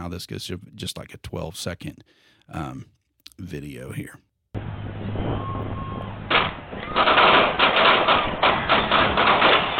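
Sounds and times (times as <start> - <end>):
speech: 0.0 - 4.3
rapid series of sharp gunshots outdoors: 6.3 - 9.7.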